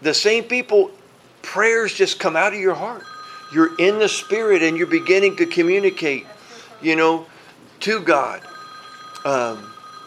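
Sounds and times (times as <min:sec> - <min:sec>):
speech: 0:00.0 - 0:08.5, 0:09.2 - 0:09.7
faint steady hum: 0:00.0 - 0:10.0
phone ringing: 0:02.8 - 0:07.2, 0:07.9 - 0:10.0.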